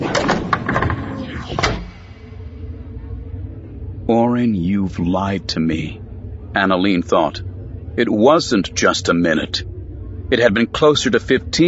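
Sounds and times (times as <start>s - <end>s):
door closing: 0.0s - 2.1s
low room hum: 0.0s - 11.6s
speech: 4.4s - 6.0s, 6.6s - 9.7s, 10.3s - 11.6s.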